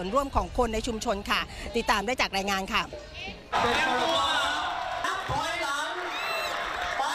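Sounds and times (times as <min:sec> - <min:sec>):
speech: 0:00.0 - 0:04.3
crowd clapping and cheering in celebration: 0:03.5 - 0:07.1
excited voices and whoops: 0:03.6 - 0:07.1.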